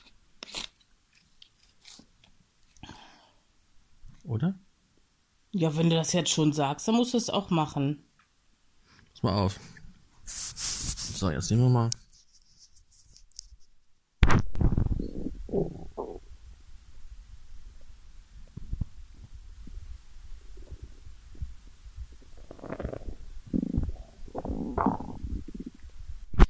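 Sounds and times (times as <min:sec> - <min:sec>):
speech: 0:04.3 - 0:04.6, 0:05.5 - 0:08.1, 0:09.2 - 0:09.7, 0:11.2 - 0:12.0
stomach gurgling from a person's upper abdomen: 0:14.6 - 0:16.3, 0:20.4 - 0:26.4.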